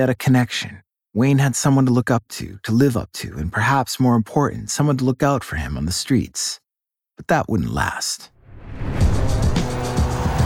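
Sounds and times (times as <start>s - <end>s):
speech: 0.0s - 6.6s, 7.2s - 9.6s
truck engine roaring outside a club: 8.8s - 10.4s
truck tires squealing and skidding across the pavement: 9.0s - 10.4s.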